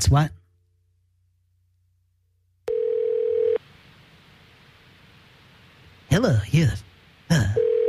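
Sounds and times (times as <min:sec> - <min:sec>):
speech: 0:00.0 - 0:00.4, 0:06.2 - 0:07.6
low hiss: 0:00.0 - 0:07.8
telephone line tone while dialing New York City: 0:02.7 - 0:03.6, 0:07.6 - 0:07.8.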